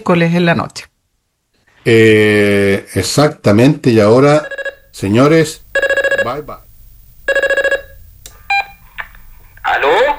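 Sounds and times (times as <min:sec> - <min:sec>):
speech: 0:00.0 - 0:00.9, 0:01.8 - 0:06.6
telephone dialing tones as a call is placed: 0:05.8 - 0:06.3, 0:07.3 - 0:08.8.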